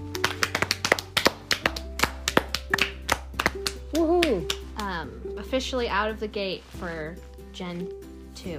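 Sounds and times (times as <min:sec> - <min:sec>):
brisk round of applause from a few people: 0:00.1 - 0:05.0
speech: 0:04.3 - 0:08.5.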